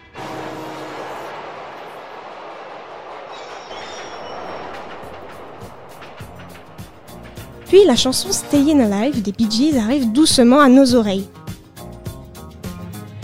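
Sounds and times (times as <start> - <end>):
subway wheels clattering and squealing on the rails: 0.0 - 9.2
New York subway train rumbling past: 0.0 - 11.4
speech: 7.7 - 11.4.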